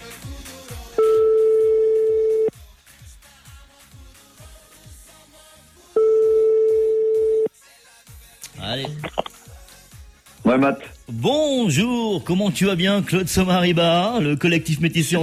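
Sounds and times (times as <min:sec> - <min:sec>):
music with a pulsing beat: 0:00.0 - 0:12.3
ringback tone of an outgoing telephone call: 0:01.0 - 0:02.5, 0:06.0 - 0:07.5
speech: 0:10.6 - 0:15.2.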